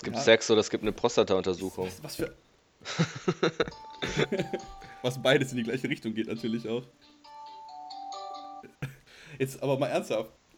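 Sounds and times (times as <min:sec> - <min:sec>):
laughter: 0:00.0 - 0:06.9, 0:08.7 - 0:10.2
speech: 0:00.0 - 0:07.2, 0:09.4 - 0:10.4
bell ringing with a bright electronic chime: 0:03.7 - 0:08.7.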